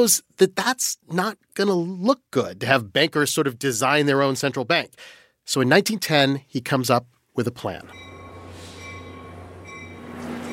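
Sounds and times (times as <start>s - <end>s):
speech: 0.0s - 8.1s
faint metallic tones at a train station: 7.8s - 10.5s
low mechanical drone at a train station: 7.9s - 10.5s
train rumbling at a station: 7.9s - 10.5s.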